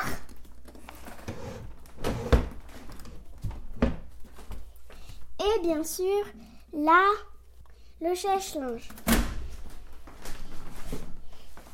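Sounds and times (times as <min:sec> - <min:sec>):
drawers sliding open and shut with wooden knocks: 0:00.9 - 0:03.1
speech: 0:05.6 - 0:07.3, 0:08.0 - 0:09.1.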